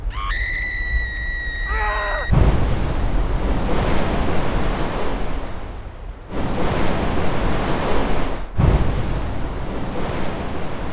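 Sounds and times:
high shrill wavering tone: 0:00.0 - 0:02.3
roaring wash of churning water: 0:00.0 - 0:10.9
wave crashing: 0:00.0 - 0:10.9.

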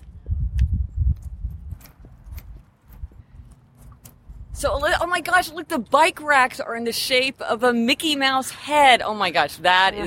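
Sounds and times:
footsteps walking outdoors on a studio lot: 0:00.0 - 0:06.5
speech: 0:04.6 - 0:10.0.

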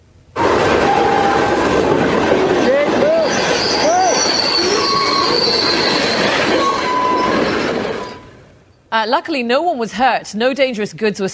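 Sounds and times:
derailing freight train roaring past with grinding rumble: 0:00.3 - 0:08.7
shrill metallic freight train wheel squeals: 0:03.0 - 0:08.4
speech: 0:09.0 - 0:11.3.

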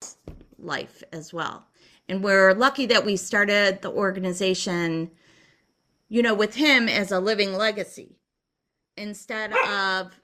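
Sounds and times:
speech: 0:00.6 - 0:05.2, 0:06.1 - 0:08.2, 0:09.0 - 0:10.2
dog yappy barks: 0:09.5 - 0:09.8.

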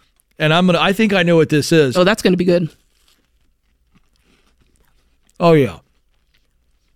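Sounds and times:
crunchy chewing of a chocolate-covered peanut butter cracker sandwich: 0:00.0 - 0:00.4, 0:02.7 - 0:06.9
speech: 0:00.4 - 0:02.8, 0:05.4 - 0:05.8.

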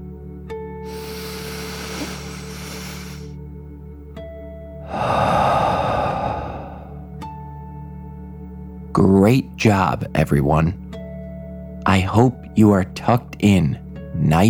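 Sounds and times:
deep slow dragon breath taken as a calming exercise: 0:00.8 - 0:03.4, 0:04.8 - 0:07.2
speech: 0:09.0 - 0:10.8, 0:11.9 - 0:14.4.

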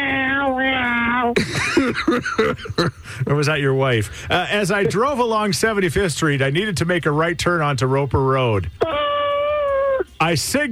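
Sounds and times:
cranky cat yowling in a car: 0:00.0 - 0:01.4, 0:08.8 - 0:10.2
speech: 0:01.3 - 0:09.0, 0:10.2 - 0:10.7
laughter: 0:01.4 - 0:03.4.

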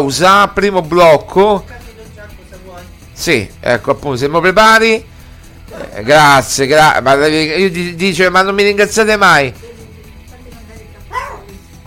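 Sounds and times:
speech: 0:00.0 - 0:01.8, 0:03.2 - 0:05.1, 0:05.8 - 0:09.7
dog barking: 0:11.1 - 0:11.8.

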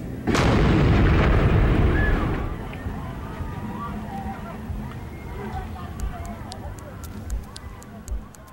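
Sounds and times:
pipe bomb explosion: 0:00.2 - 0:02.7
crowd murmuring: 0:01.8 - 0:08.5.

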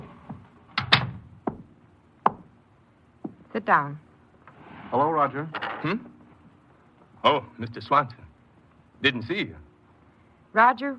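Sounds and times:
speech: 0:03.6 - 0:04.0, 0:04.9 - 0:06.1, 0:07.2 - 0:08.2, 0:09.0 - 0:09.6, 0:10.5 - 0:10.9
office door creaking: 0:04.5 - 0:06.1.

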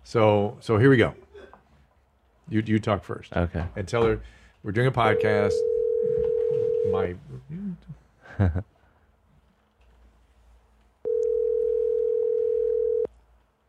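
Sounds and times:
speech: 0:00.1 - 0:01.2, 0:02.5 - 0:06.2, 0:06.9 - 0:08.7
phone line ringback tone of an unanswered outgoing call: 0:05.1 - 0:07.1, 0:11.0 - 0:13.1.

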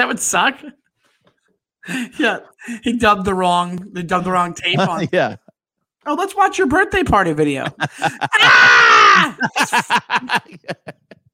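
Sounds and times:
speech: 0:00.0 - 0:00.8, 0:01.8 - 0:05.4, 0:06.0 - 0:11.1
laughter: 0:04.6 - 0:05.5, 0:07.5 - 0:11.3
voice imitating a child screaming in pain: 0:08.3 - 0:09.4.

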